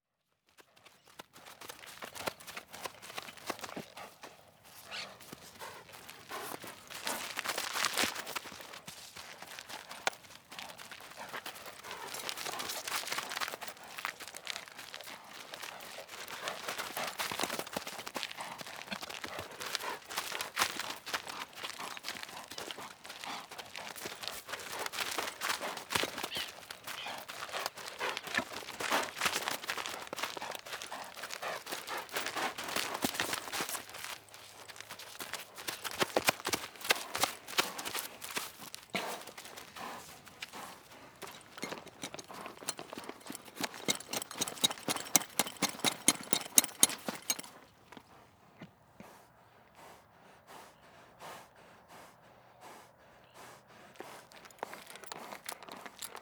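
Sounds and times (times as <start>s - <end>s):
horse walking and trotting around the microphone: 0.5s - 56.2s
stirrups clinking: 41.2s - 47.6s.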